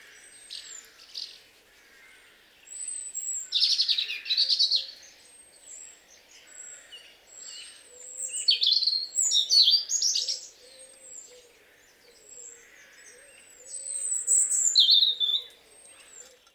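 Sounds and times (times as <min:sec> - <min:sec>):
Erithacus rubecula European robin singing: 0:02.7 - 0:16.5.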